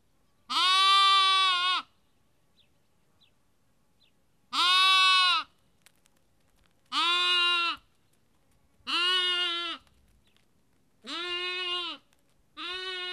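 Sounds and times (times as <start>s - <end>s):
sheep lamb bleating in Kakopetria Cyprus: 0.5s - 1.9s, 4.5s - 5.5s, 6.9s - 7.8s, 8.8s - 9.8s, 11.0s - 13.1s.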